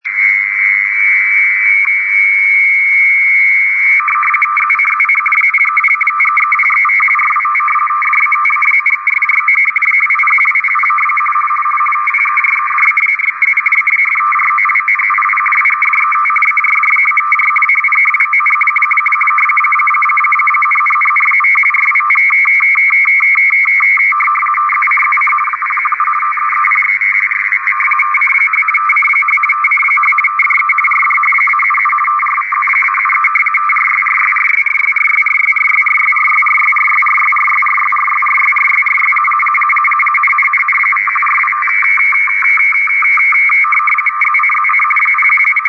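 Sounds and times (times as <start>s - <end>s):
meteo RTTY 50 baud signal: 0.0s - 45.6s.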